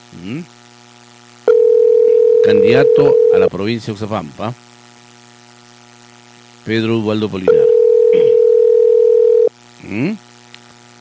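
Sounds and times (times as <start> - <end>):
speech: 0.1 - 0.6, 2.4 - 4.6, 6.6 - 7.6, 9.9 - 10.2
phone ringing tone while placing a call: 1.5 - 3.5, 7.5 - 9.5.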